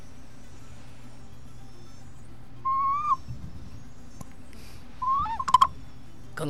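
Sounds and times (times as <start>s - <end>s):
bird-shaped water whistle imitating bird calls: 2.6s - 3.2s, 5.0s - 5.7s.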